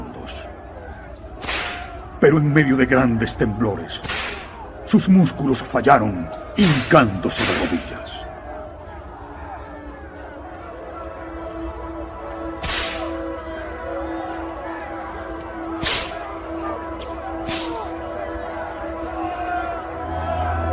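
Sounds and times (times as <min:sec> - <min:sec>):
murmur: 0:00.0 - 0:20.7
whip cracks of a three-tailed flagrum used to scourge a man: 0:01.4 - 0:02.0, 0:04.0 - 0:04.6, 0:07.4 - 0:07.8, 0:12.6 - 0:13.1, 0:15.8 - 0:16.2, 0:17.4 - 0:17.9
speech: 0:02.2 - 0:04.2, 0:04.9 - 0:08.2.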